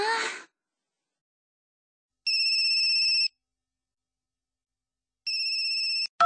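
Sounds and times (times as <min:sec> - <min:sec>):
phone ringtone: 0:02.3 - 0:03.3, 0:05.3 - 0:06.2.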